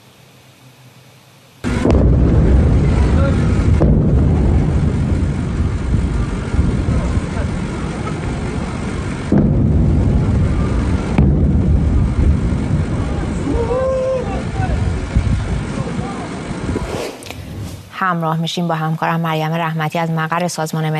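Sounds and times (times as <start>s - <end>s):
heavy booming explosions at dawn: 1.6s - 18.1s
speech: 18.0s - 20.9s.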